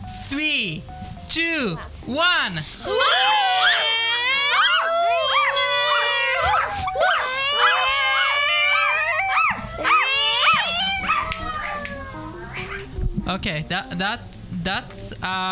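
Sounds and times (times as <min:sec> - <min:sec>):
speech: 0:00.3 - 0:03.8, 0:13.3 - 0:15.5
group of children in a video studio imitating barking woofs and howls: 0:02.8 - 0:12.9.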